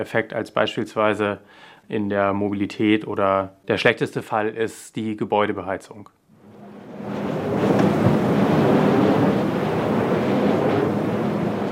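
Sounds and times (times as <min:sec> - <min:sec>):
speech: 0:00.0 - 0:06.2
wind buffeting across open ground at a wind farm: 0:06.4 - 0:11.6.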